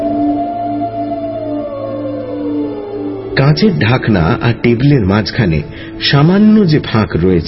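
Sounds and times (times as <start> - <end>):
Norwegian wild fox howling: 0.0 - 4.9
speech: 3.4 - 7.4.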